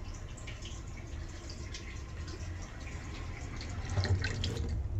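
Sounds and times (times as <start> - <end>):
water running as a sink overflows: 0.0 - 4.9.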